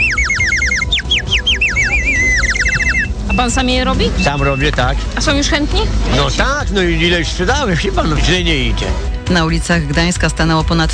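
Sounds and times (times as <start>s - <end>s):
ceramic water bird whistles shaped as birds, roosters and canaries warbling: 0.0s - 4.8s
low busy outdoor rumble at a street market in Gdańsk, Poland: 0.0s - 9.1s
speech: 3.4s - 10.9s.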